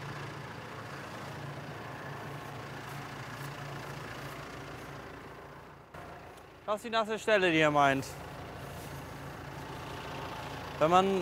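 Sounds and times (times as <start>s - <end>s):
tractor heavy diesel engine running at low revs: 0.0s - 11.2s
speech: 6.7s - 8.2s, 10.8s - 11.2s.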